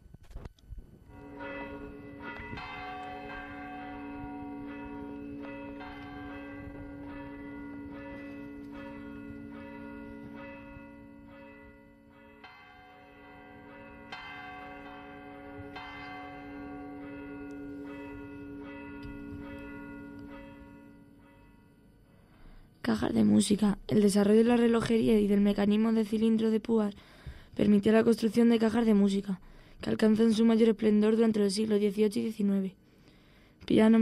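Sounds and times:
church bells ringing from a parish church tower: 0:01.1 - 0:22.1
speech: 0:22.9 - 0:32.8, 0:33.7 - 0:34.0.

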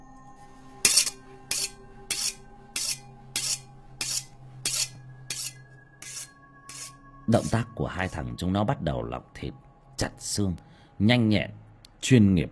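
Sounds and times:
knives being sharpened in a stuffy closed-in basement: 0:00.8 - 0:07.6
speech: 0:07.3 - 0:12.5.

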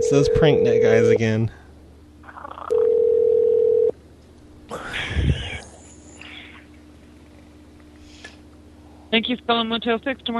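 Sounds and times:
ringback tone on an outgoing phone call: 0:00.1 - 0:01.2, 0:02.7 - 0:03.9
speech: 0:00.1 - 0:01.6, 0:09.1 - 0:10.3
clattering rustle as the phone line is picked up: 0:02.7 - 0:03.9.

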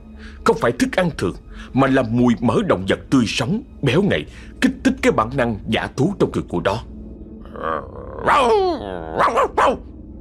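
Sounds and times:
speech: 0:00.5 - 0:06.9, 0:07.6 - 0:09.9
dog growling and barking fiercely: 0:07.4 - 0:10.0.

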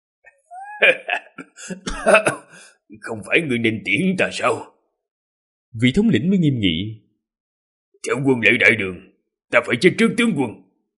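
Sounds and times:
man laughing: 0:00.6 - 0:02.6
man in a violent coughing fit: 0:01.0 - 0:02.6
speech: 0:01.6 - 0:04.7, 0:05.7 - 0:07.0, 0:08.0 - 0:10.6.

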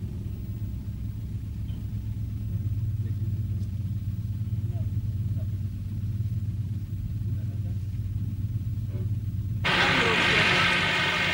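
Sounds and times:
congested road traffic at night: 0:00.0 - 0:11.3
broad rush of noise: 0:09.6 - 0:11.3.

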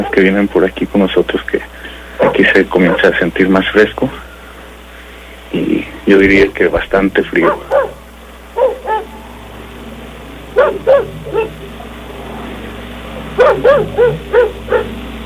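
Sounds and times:
dogs barking close by on a cold evening: 0:00.0 - 0:00.5, 0:02.2 - 0:03.3, 0:07.3 - 0:09.4, 0:10.5 - 0:15.1
speech: 0:00.0 - 0:04.3, 0:05.5 - 0:07.9
steady low hum: 0:00.0 - 0:15.2.

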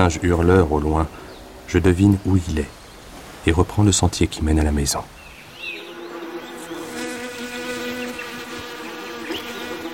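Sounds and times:
speech: 0:00.0 - 0:02.8, 0:03.4 - 0:05.2
iridescent flies buzzing around a body outdoors: 0:05.5 - 0:09.9.

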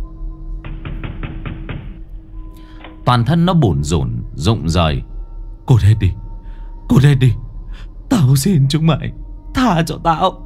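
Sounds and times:
heavy pounding knock on a house door at night: 0:00.6 - 0:02.1
speech: 0:03.1 - 0:05.1, 0:05.7 - 0:06.2, 0:06.9 - 0:10.4.

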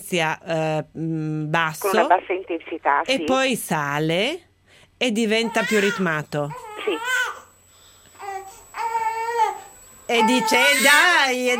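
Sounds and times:
speech: 0:00.1 - 0:07.4, 0:10.1 - 0:11.5
infant crying from hunger: 0:05.5 - 0:07.5, 0:08.2 - 0:11.5.

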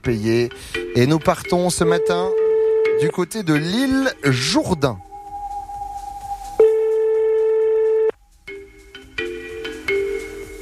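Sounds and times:
speech: 0:00.0 - 0:02.4, 0:03.0 - 0:05.1
telephone tones on an outgoing live call: 0:01.8 - 0:03.2, 0:06.6 - 0:08.1.

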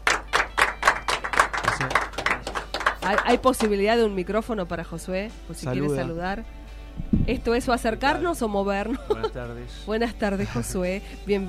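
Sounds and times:
audience applauding guests at a live event: 0:00.0 - 0:03.7
speech: 0:03.1 - 0:06.6, 0:07.3 - 0:11.4
laughter: 0:08.9 - 0:09.4.

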